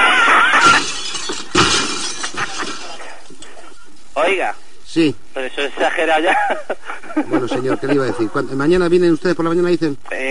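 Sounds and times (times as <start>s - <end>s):
laughter: 0.0s - 1.0s, 2.2s - 3.1s, 5.7s - 8.6s
classroom window glass shattering: 0.0s - 3.1s
glass shards clattering down: 0.4s - 3.1s
scattered tinkling of broken glass: 0.6s - 3.0s
speech: 4.3s - 10.2s.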